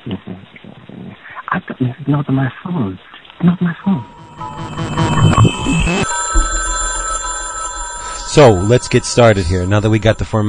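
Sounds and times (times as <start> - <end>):
speech: 0.1 - 0.6, 2.1 - 6.2, 8.3 - 10.4
telephone ringing with a tonal electronic ring: 3.9 - 10.4.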